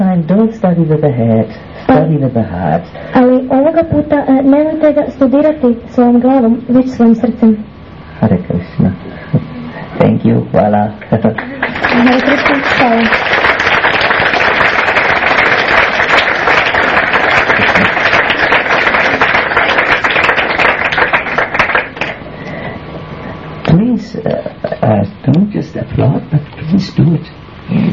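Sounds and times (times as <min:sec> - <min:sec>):
speech: 0:00.3 - 0:13.4, 0:24.2 - 0:27.9
audience applauding: 0:11.4 - 0:22.2.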